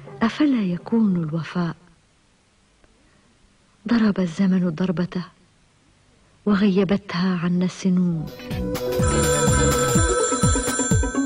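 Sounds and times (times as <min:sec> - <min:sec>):
speech: 0:00.2 - 0:01.8, 0:03.9 - 0:05.4, 0:06.4 - 0:08.6
old-fashioned telephone bell ringing: 0:08.8 - 0:11.2.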